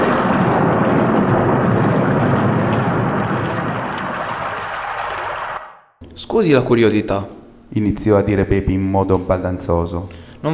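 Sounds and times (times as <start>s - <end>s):
loud continuous rumble of thunder after a lightning flash: 0.0s - 5.4s
heavy rain: 0.0s - 5.5s
speech: 6.3s - 10.5s.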